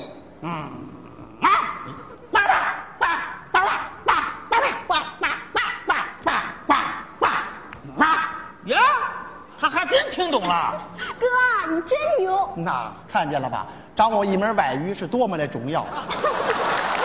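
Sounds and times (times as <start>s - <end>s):
speech: 0.4s - 1.1s, 10.4s - 16.2s
security guard imitating dog barking: 0.4s - 9.4s
laughter: 3.1s - 6.9s, 15.8s - 17.0s.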